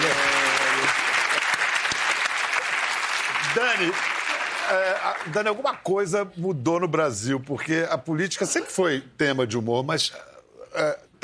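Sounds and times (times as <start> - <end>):
audience applause: 0.0 - 5.7
speech: 3.6 - 11.2.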